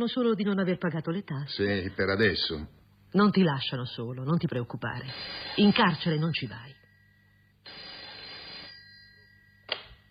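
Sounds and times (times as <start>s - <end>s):
speech: 0.0s - 6.8s
telephone bell ringing: 6.8s - 10.1s.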